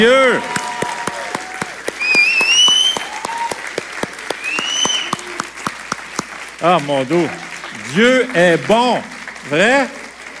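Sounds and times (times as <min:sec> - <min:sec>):
speech: 0:00.0 - 0:00.6, 0:06.6 - 0:10.0
high-pitched cheers or whistles: 0:00.0 - 0:05.4
church congregation applauding loudly in a standing ovation: 0:00.0 - 0:10.3.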